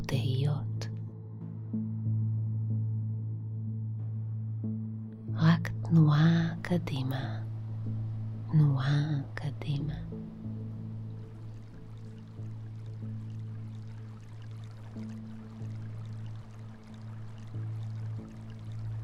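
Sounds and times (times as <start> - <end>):
low sustained musical drone: 0.0 - 19.0
speech: 5.9 - 7.4, 8.5 - 10.1
river water rushing: 10.8 - 19.0.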